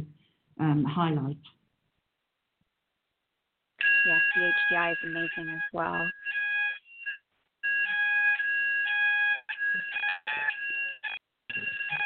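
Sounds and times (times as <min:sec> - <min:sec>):
faint noise: 0:00.0 - 0:12.0
speech: 0:00.6 - 0:01.6, 0:04.0 - 0:06.3
electronic fire alarm ringing in a test: 0:03.8 - 0:12.0.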